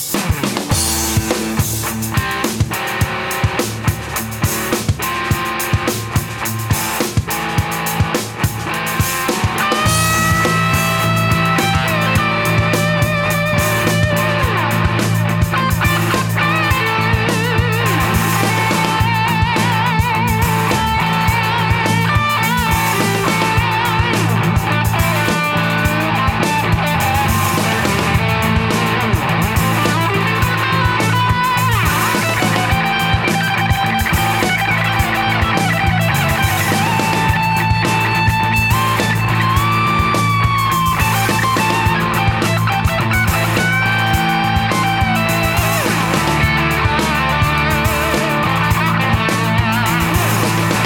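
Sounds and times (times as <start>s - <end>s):
DOD high gain distortion: 0.1s - 50.8s.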